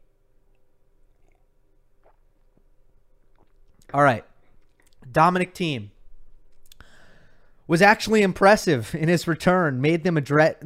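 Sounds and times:
low hum: 0.0 - 10.6
sipping and swallowing of coffee: 0.5 - 5.1
speech: 3.9 - 4.3, 5.1 - 5.9, 7.7 - 10.6.

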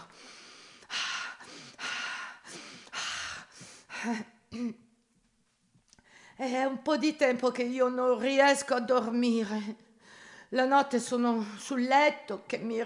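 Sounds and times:
person taking deep heavy calming breaths: 0.0 - 4.2, 6.0 - 6.4, 9.9 - 10.5
speech: 4.0 - 4.9, 6.4 - 9.8, 10.5 - 12.8.

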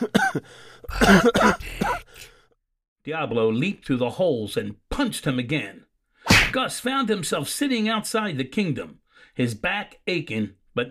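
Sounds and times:
throat clearing: 0.0 - 2.1
person coughing: 0.0 - 2.2
person gasping: 0.3 - 2.6
speech: 0.4 - 2.0, 3.1 - 5.9, 6.5 - 10.8.

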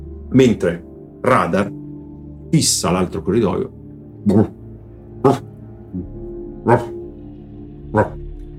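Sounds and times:
speech: 0.3 - 1.8, 2.5 - 4.6, 5.2 - 7.0, 7.9 - 8.2
dog barking: 4.3 - 4.6, 5.2 - 5.5, 6.6 - 7.0, 7.9 - 8.3
dog short yelp: 5.2 - 5.5, 6.6 - 7.0, 7.9 - 8.2.

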